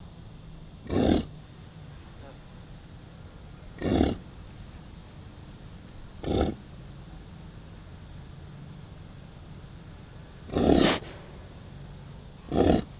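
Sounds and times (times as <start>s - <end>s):
female American bison snorting while waiting for feeding: 0.8s - 1.4s, 3.8s - 4.3s, 6.2s - 6.6s, 10.4s - 11.2s, 12.4s - 12.9s.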